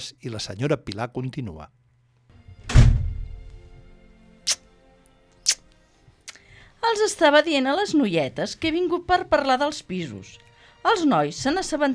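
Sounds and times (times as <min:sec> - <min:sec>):
speech: 0:00.0 - 0:01.9, 0:07.0 - 0:11.9
door opening with a heavy thunk: 0:02.6 - 0:03.3
short sharp clicks: 0:04.5 - 0:04.7.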